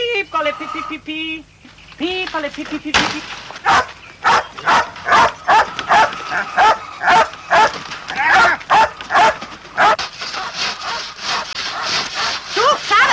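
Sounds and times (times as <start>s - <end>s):
steady noisy background: 0.0s - 13.1s
speech: 0.4s - 4.8s
fox or marten in a henhouse giving harsh rasping bark-like calls: 3.6s - 13.1s.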